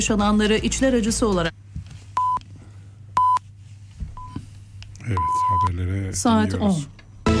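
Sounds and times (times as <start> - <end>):
speech: 0.0 - 1.6, 5.1 - 7.0
low hum: 0.0 - 7.3
mobile phone beeping: 2.2 - 2.4, 3.2 - 3.4, 4.2 - 4.4, 5.2 - 5.7.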